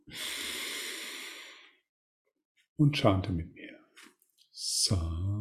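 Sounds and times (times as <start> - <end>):
deep inhale during a guided meditation: 0.0 - 1.8
speech: 2.8 - 3.6, 4.8 - 5.3.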